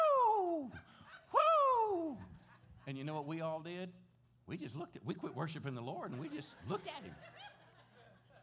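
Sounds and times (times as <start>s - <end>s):
man imitating an excited churchgoer whoop: 0.0s - 2.5s
laughter: 0.7s - 3.3s, 6.0s - 8.4s
speech: 2.9s - 7.6s.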